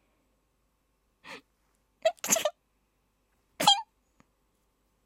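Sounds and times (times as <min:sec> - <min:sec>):
voice imitating a girl's dainty affected sneeze: 0:02.1 - 0:02.6, 0:03.6 - 0:03.9.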